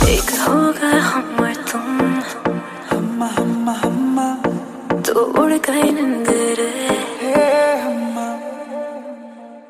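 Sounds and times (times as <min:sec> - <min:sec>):
Bollywood female vocal ringtone: 0:00.1 - 0:07.8.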